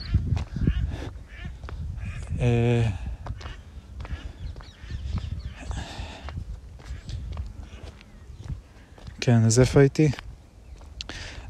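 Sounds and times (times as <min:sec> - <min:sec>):
startled ducks quacking: 0:00.0 - 0:08.1
speech: 0:02.4 - 0:03.1, 0:09.3 - 0:10.2.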